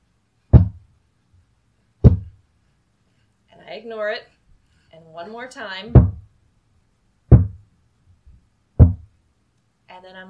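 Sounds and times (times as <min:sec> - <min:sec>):
slow heavy knocks on a door: 0:00.5 - 0:00.8, 0:02.0 - 0:02.4, 0:06.0 - 0:06.3, 0:07.3 - 0:07.6, 0:08.8 - 0:09.1
faint low thud: 0:00.5 - 0:00.9, 0:02.0 - 0:02.4, 0:05.9 - 0:06.3, 0:07.3 - 0:07.7, 0:08.8 - 0:09.1
speech: 0:03.8 - 0:06.1, 0:09.9 - 0:10.2.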